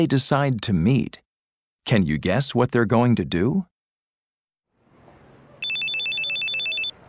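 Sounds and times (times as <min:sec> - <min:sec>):
speech: 0:00.0 - 0:01.2, 0:01.8 - 0:03.7
telephone ringing with electronic trill: 0:05.6 - 0:07.0.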